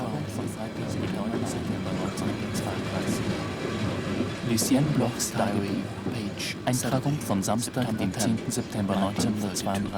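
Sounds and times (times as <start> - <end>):
train rolling slowly rumbling: 0.0 - 9.9
speech: 4.6 - 9.9.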